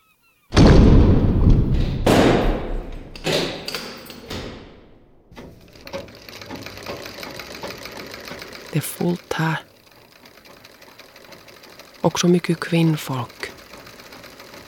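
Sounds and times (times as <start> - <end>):
heavy prison cell door slamming shut: 0.5 - 5.4
metallic clanks of the cell door lock being secured: 2.0 - 6.1
speech: 8.8 - 9.7, 12.0 - 13.4.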